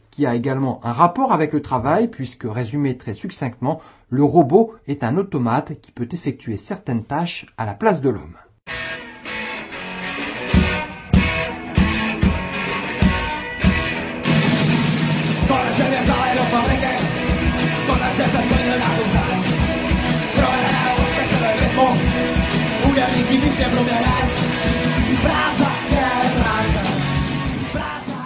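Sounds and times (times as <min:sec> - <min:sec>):
speech: 0:00.2 - 0:08.9, 0:23.3 - 0:24.5
loud Czech punk rock song: 0:08.7 - 0:28.2
thick distorted guitars: 0:08.7 - 0:28.2
pounding drums: 0:10.6 - 0:26.9
shouted group vocals: 0:15.4 - 0:22.1, 0:22.8 - 0:28.2.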